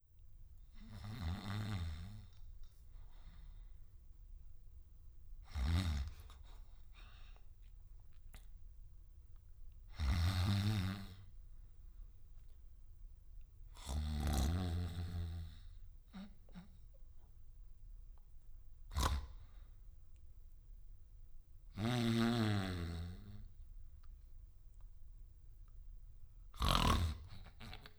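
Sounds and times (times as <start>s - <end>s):
snort: 0.7s - 2.4s, 5.4s - 7.4s, 9.9s - 11.3s, 13.8s - 16.9s, 18.8s - 19.8s, 21.7s - 23.5s, 26.5s - 27.9s.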